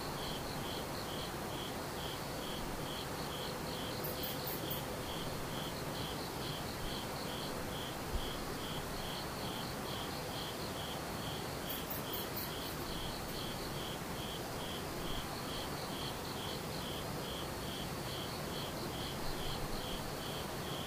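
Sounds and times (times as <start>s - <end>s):
insects chirping: 0.0s - 20.8s.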